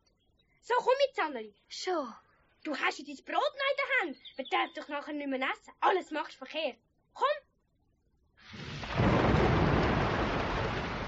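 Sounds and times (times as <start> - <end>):
speech: 0.6 - 7.4
dense steady roar of heavy rain: 8.5 - 11.0
rolling rumble of thunder: 8.5 - 11.0.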